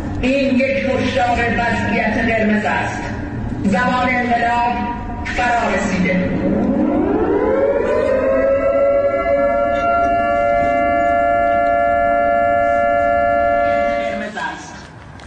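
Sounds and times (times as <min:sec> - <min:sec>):
speech: 0:00.2 - 0:03.1, 0:03.7 - 0:06.9
civil defense siren wailing: 0:04.9 - 0:14.4.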